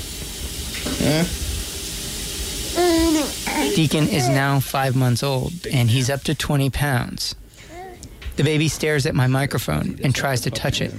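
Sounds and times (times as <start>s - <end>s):
running water in a kitchen sink: 0.0s - 6.7s
speech: 1.0s - 1.4s, 3.8s - 7.4s, 8.4s - 10.9s.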